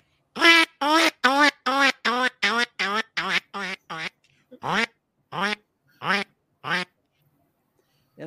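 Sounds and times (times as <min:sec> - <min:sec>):
person imitating mallard and teal duck calls by voice: 0:00.4 - 0:06.9.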